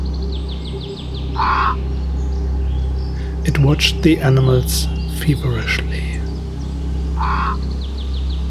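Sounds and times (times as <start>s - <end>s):
low steady hum: 0.0s - 8.4s
crow cawing in an old beech tree: 1.4s - 1.8s, 7.2s - 7.7s
speech: 3.7s - 6.1s.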